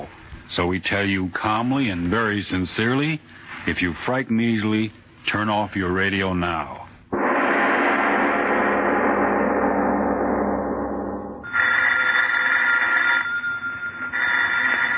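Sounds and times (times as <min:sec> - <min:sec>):
speech: 0:00.5 - 0:06.8
sustained swelling sound: 0:07.2 - 0:11.5
telephone ringing: 0:11.4 - 0:14.9.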